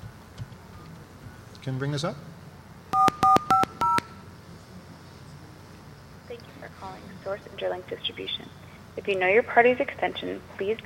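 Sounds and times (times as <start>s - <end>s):
speech: 1.6s - 2.3s, 6.6s - 10.8s
telephone keypad tones dialing a number: 3.0s - 4.2s.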